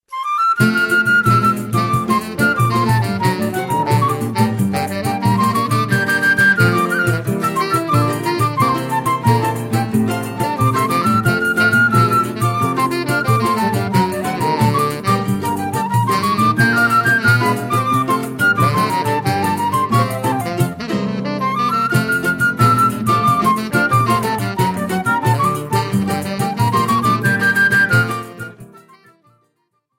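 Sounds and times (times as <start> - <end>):
flute: 0.0 - 29.9
saxophone: 0.1 - 29.8.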